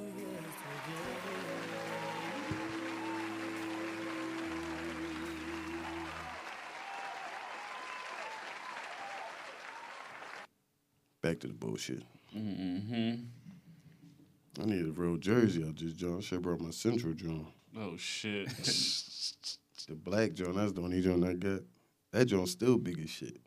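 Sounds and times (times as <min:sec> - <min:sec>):
crowd applauding: 0:00.0 - 0:10.5
speech: 0:11.3 - 0:13.4, 0:14.6 - 0:23.4.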